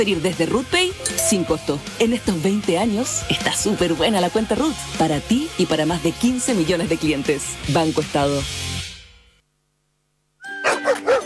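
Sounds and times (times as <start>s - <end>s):
speech: 0.0s - 8.7s
chime-like tone: 1.0s - 1.8s
dogs of an animal welfare corporation barking: 10.6s - 11.2s.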